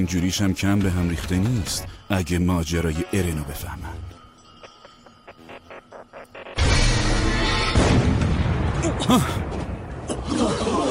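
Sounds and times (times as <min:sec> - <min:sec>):
speech: 0:00.0 - 0:04.2, 0:09.0 - 0:09.5
single cannon shot booming: 0:06.6 - 0:10.0.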